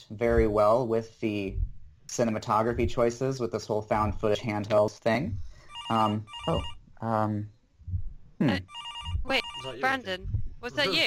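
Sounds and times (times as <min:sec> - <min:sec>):
speech: 0:00.1 - 0:07.6, 0:08.4 - 0:11.0
landline telephone ringing with a bright trilling tone: 0:05.6 - 0:06.8, 0:08.6 - 0:10.2.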